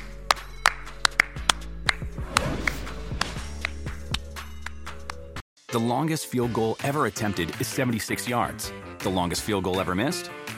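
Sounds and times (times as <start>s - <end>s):
hands clapping: 0.0s - 5.4s
dull low thumps: 2.0s - 5.0s
speech: 5.7s - 10.4s.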